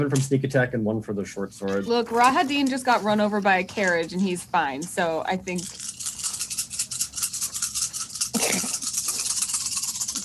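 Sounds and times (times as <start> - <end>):
speech: 0.0 - 6.2, 8.4 - 8.8
handful of six-sided dice rattling: 5.5 - 10.2.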